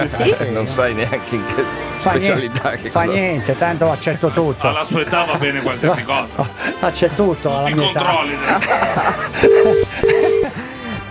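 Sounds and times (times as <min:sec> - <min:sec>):
speech: 0:00.0 - 0:10.2
laughter: 0:00.0 - 0:11.0
telephone ringback tone: 0:09.4 - 0:10.5.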